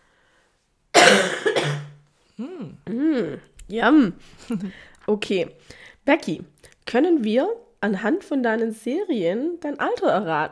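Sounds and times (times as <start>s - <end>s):
harsh coughs trailing into a low voiced rasp: 1.0s - 2.0s
speech: 3.7s - 10.5s.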